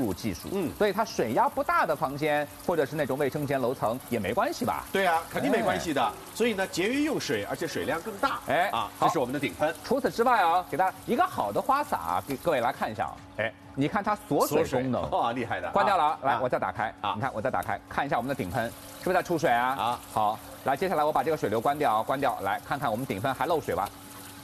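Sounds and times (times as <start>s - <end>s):
water spraying from large overhead shower head: 0.0s - 13.0s, 18.0s - 24.4s
two people talking: 0.0s - 23.9s.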